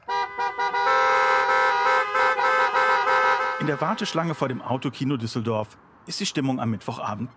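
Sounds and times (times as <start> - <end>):
car horns honking at a drive-in cinema in Düsseldorf Germany: 0.0 - 4.9
speech: 3.6 - 7.3.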